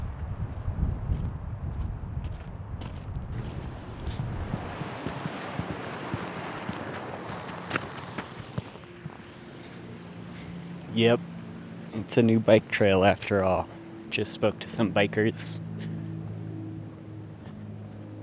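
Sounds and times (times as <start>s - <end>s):
gusty wind ahead of the first autumn storm buffeting the microphone: 0.0s - 8.6s
speech: 11.0s - 11.3s, 12.0s - 15.7s.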